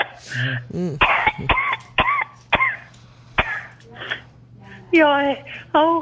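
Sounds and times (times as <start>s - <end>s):
speech: 0.2s - 1.9s, 4.9s - 5.9s
person coughing harshly: 0.6s - 3.7s.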